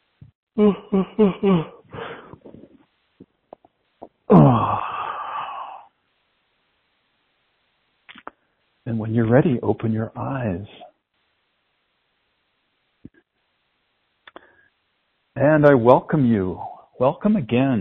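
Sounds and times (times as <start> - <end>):
speech: 0.6 - 1.8, 9.1 - 10.9, 15.4 - 17.8
person yawning: 0.6 - 2.3, 4.3 - 5.9
voiced grunts and sighs while stretching: 0.6 - 2.7, 4.3 - 5.9.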